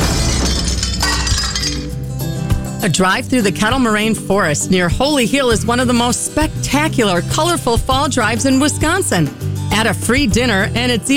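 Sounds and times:
glass smashing in a smash room: 0:00.0 - 0:02.1
speech: 0:02.8 - 0:11.1.

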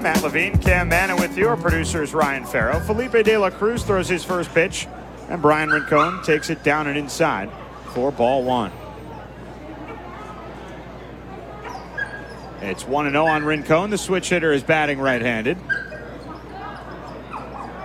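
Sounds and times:
speech: 0:00.0 - 0:08.8, 0:12.6 - 0:15.7
murmur of a large baseball stadium crowd: 0:00.0 - 0:17.8
dog yelping and whimpering at a baseball game: 0:05.6 - 0:06.6, 0:11.6 - 0:13.6, 0:15.6 - 0:17.8.

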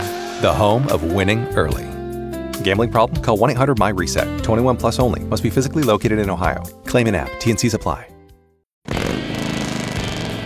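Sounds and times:
speech: 0:00.4 - 0:02.0, 0:02.6 - 0:08.1
Harley-Davidson motorcycle engine rumbling: 0:08.9 - 0:10.4.

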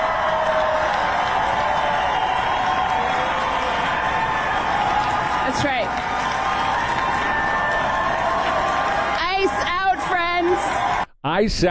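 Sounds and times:
large crowd cheering and shouting at political rally: 0:00.0 - 0:11.1
speech: 0:05.6 - 0:06.1, 0:11.4 - 0:11.6.

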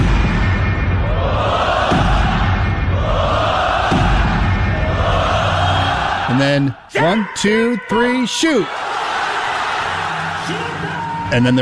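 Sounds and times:
crowd shouting and roaring at a rock-paper-scissors competition final: 0:00.9 - 0:11.6
thuds: 0:01.8 - 0:02.8, 0:03.8 - 0:04.7
speech: 0:06.4 - 0:08.9, 0:11.3 - 0:11.6.

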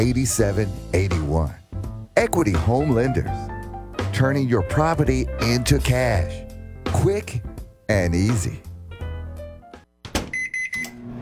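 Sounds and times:
speech: 0:00.0 - 0:01.6, 0:02.2 - 0:03.5, 0:04.1 - 0:06.4, 0:07.0 - 0:08.6
microwave oven humming: 0:10.3 - 0:11.2.

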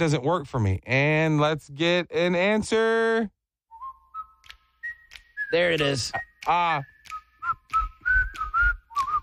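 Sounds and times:
speech: 0:00.0 - 0:03.4, 0:05.5 - 0:06.9
person whistling a short wavering tune: 0:03.7 - 0:09.2.

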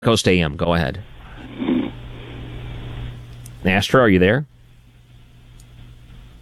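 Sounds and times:
speech: 0:00.0 - 0:01.7, 0:03.6 - 0:04.5
low snore from a sleeping caller over a phone line: 0:01.2 - 0:02.8.

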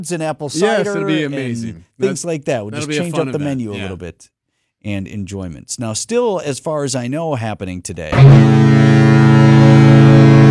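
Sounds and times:
speech: 0:00.0 - 0:09.6
laughter: 0:00.6 - 0:04.0
big cruise ship horn blast arriving in port: 0:08.4 - 0:10.4.

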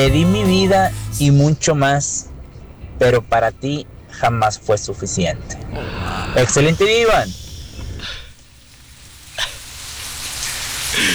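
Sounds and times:
speech: 0:00.0 - 0:02.3, 0:03.0 - 0:07.4
steady rain pattering on a surface: 0:00.0 - 0:11.1
water splash: 0:06.7 - 0:11.1.

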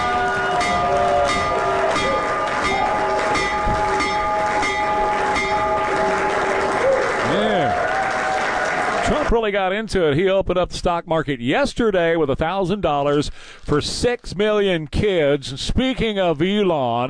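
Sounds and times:
bell ringing: 0:00.0 - 0:06.6
crowd applauding and cheering: 0:00.0 - 0:09.5
speech: 0:09.3 - 0:17.0.

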